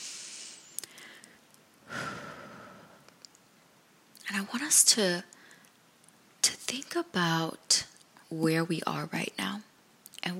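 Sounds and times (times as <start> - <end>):
deep breath in during a guided relaxation exercise: 0.0 - 3.1
speech: 4.4 - 5.3, 6.7 - 9.7.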